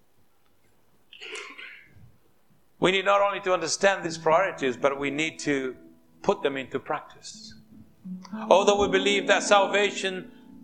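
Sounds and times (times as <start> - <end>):
sneeze during a church sermon: 1.2 - 2.0
man preaching a church sermon: 2.8 - 7.6, 8.5 - 10.3
speech: 2.8 - 7.6, 8.3 - 10.4.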